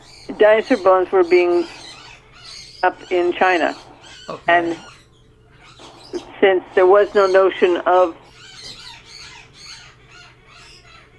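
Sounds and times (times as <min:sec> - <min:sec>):
pet birds squawking: 0:00.0 - 0:11.1
speech: 0:00.4 - 0:01.8, 0:02.8 - 0:04.9, 0:06.1 - 0:08.2.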